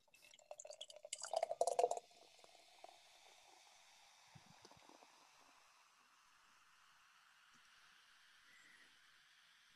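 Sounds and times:
beer being poured from cans: 0.0s - 3.7s
soft drips: 0.0s - 7.8s
faint fizz of beer: 0.0s - 9.7s.

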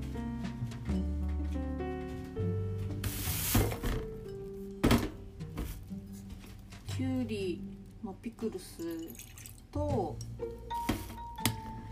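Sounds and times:
soft music: 0.0s - 11.9s
speech: 7.0s - 10.8s
soda pouring and fizzing into a glass with apple vinegar: 8.8s - 9.7s.

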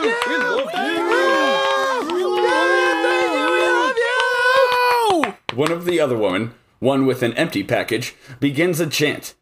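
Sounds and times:
dense crowd cheering and screaming: 0.0s - 5.3s
speech: 0.2s - 1.1s, 5.6s - 9.4s.

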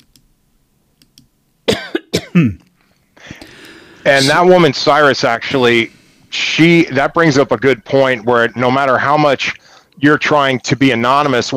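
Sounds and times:
person clearing their throat: 1.7s - 2.7s
speech: 2.4s - 2.6s, 4.0s - 6.0s, 6.6s - 11.5s.

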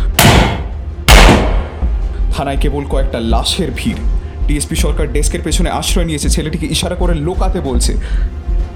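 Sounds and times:
rifle gunshots inside a police station: 0.1s - 1.9s
speech: 2.4s - 8.5s.

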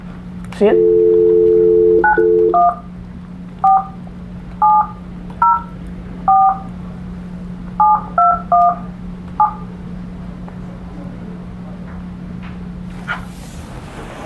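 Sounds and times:
speech: 0.6s - 1.1s
phone keypad tones dialing a number: 0.6s - 2.8s, 3.6s - 4.0s, 4.6s - 5.7s, 6.3s - 6.7s, 7.8s - 9.6s
phone dial tone: 0.7s - 2.8s.

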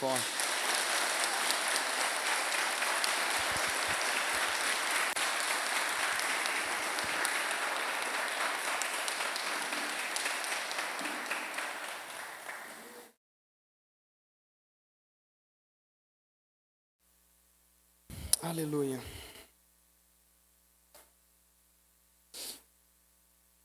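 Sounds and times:
speech: 0.0s - 0.4s, 18.5s - 19.2s
audience applause: 0.0s - 13.2s.

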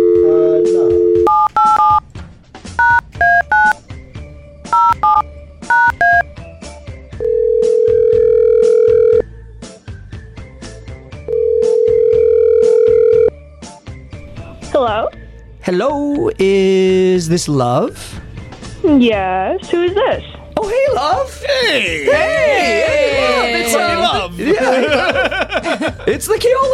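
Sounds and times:
long steady telephone ringing tones: 0.0s - 2.0s, 4.8s - 6.2s, 7.2s - 9.2s, 11.3s - 13.3s
touch-tone telephone keypad beeps: 0.0s - 2.0s, 2.8s - 3.8s, 4.7s - 6.2s
speech: 15.9s - 18.2s, 18.9s - 26.7s
laughter: 21.2s - 26.5s.

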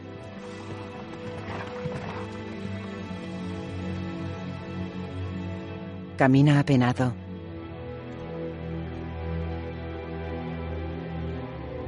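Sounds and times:
dense sustained music: 0.0s - 6.2s, 7.2s - 11.8s
horse galloping through a forest: 0.4s - 2.9s
speech: 6.2s - 7.2s.

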